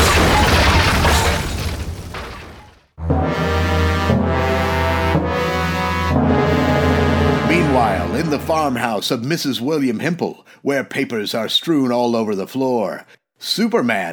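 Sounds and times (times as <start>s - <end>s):
burning roof of a blazing barracks collapsing: 0.0s - 2.8s
sustained orchestral music: 3.0s - 9.0s
speech: 7.8s - 14.1s.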